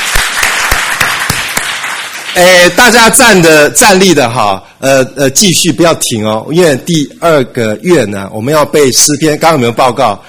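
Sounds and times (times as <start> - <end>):
church congregation clapping hands: 0.0 - 3.0
speech: 2.4 - 10.2.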